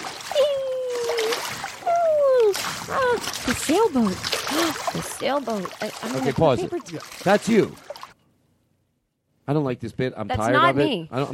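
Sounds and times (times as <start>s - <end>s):
water splashing: 0.0s - 8.2s
speech: 3.4s - 7.9s, 9.5s - 11.3s.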